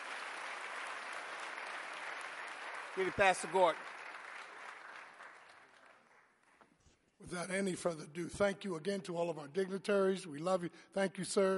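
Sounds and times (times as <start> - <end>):
audience applauding: 0.0 - 6.7
speech: 3.0 - 4.0, 7.2 - 11.5.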